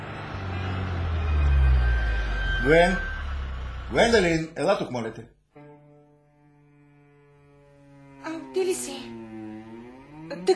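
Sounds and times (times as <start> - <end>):
car engine humming while driving: 0.0 - 4.6, 7.8 - 10.5
speech: 2.6 - 3.1, 3.9 - 5.4, 10.3 - 10.5.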